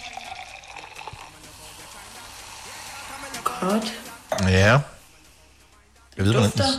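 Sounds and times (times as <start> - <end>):
foaming drink pouring into a small wine glass: 0.0 - 3.1
speech: 3.6 - 4.9, 6.2 - 6.7.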